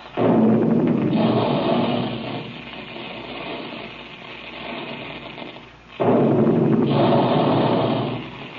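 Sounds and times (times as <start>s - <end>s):
big guns firing: 0.0s - 2.8s, 6.0s - 8.5s
rumbling roar: 0.2s - 2.7s, 6.0s - 8.5s.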